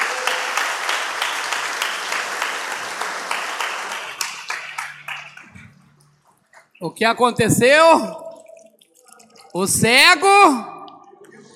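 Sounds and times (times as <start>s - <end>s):
crowd applauding: 0.0s - 6.0s
speech: 6.8s - 8.2s, 9.5s - 10.7s.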